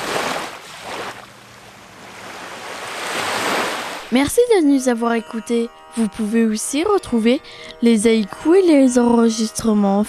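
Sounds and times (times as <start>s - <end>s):
sea waves washing in and breaking: 0.0s - 4.2s
speech: 4.1s - 10.0s.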